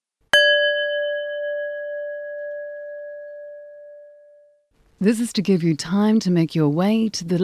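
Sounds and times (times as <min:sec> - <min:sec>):
single clear bell ringing: 0:00.4 - 0:04.1
speech: 0:05.0 - 0:07.4.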